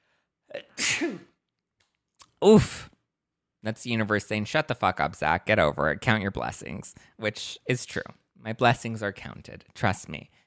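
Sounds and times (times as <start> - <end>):
loud sneeze: 0.7 - 1.4
speech: 1.0 - 1.3, 2.4 - 2.9, 3.6 - 10.4.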